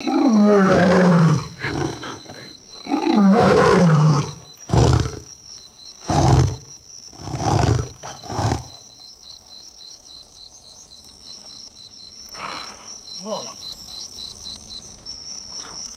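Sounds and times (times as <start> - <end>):
lions snarling: 0.0 - 5.3, 6.0 - 8.8
background insects: 0.0 - 15.9.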